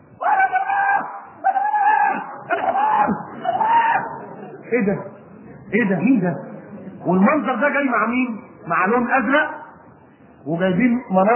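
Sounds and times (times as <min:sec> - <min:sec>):
man screaming: 0:00.2 - 0:04.1
speech: 0:04.7 - 0:05.1, 0:05.7 - 0:09.6, 0:10.4 - 0:11.3.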